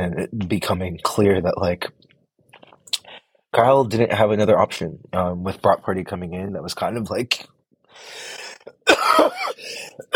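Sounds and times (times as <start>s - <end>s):
speech: 0.0s - 2.1s, 3.5s - 10.1s
person coughing: 8.4s - 10.1s
person clearing throat: 8.6s - 10.1s.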